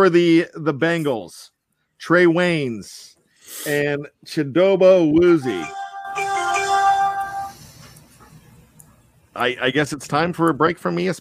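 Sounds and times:
speech: 0:00.0 - 0:05.8, 0:09.4 - 0:11.2
mobile phone ringtone with bright electronic melody: 0:05.4 - 0:07.6.

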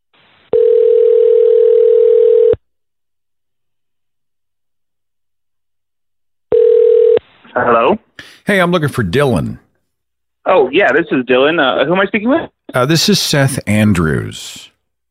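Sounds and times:
electronic telephone ringback tone during an outgoing call: 0:00.5 - 0:02.6, 0:06.5 - 0:07.2
speech: 0:08.5 - 0:09.6, 0:10.5 - 0:14.7.

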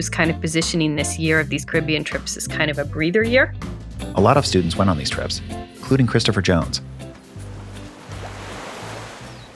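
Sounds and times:
speech: 0:00.0 - 0:07.0
ocean waves washing onto a beach in Barbados: 0:07.1 - 0:09.5.

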